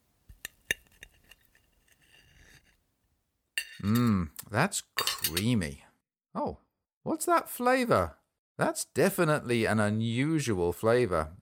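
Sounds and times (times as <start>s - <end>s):
cutlery scraping: 0.4s - 2.8s, 3.6s - 4.2s, 5.0s - 5.5s
cutlery clinking against dishes as cake is sliced and served: 3.6s - 4.2s, 5.0s - 5.6s
speech: 3.8s - 5.8s, 6.4s - 11.4s.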